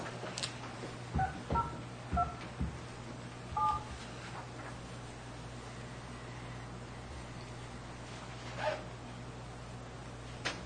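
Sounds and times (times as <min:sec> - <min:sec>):
steady low hum: 0:00.0 - 0:10.6
telephone keypad tones dialing an account code: 0:03.6 - 0:03.9.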